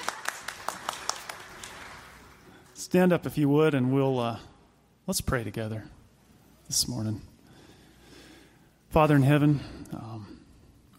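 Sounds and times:
small audience applause: 0.0 - 2.8
soft room hum: 0.0 - 10.9
speech: 2.8 - 4.5, 5.1 - 6.0, 6.7 - 7.3, 8.9 - 10.4.

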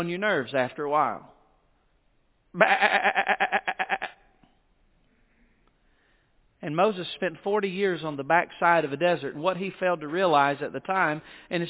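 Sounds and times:
speech: 0.0 - 1.3, 2.6 - 3.5, 6.6 - 11.6
single sheep bleating: 2.6 - 4.2.

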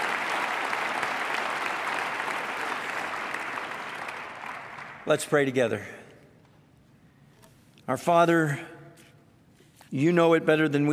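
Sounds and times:
congregation applauding ushers: 0.0 - 5.8
speech: 5.0 - 6.0, 7.9 - 8.8, 9.9 - 10.9.

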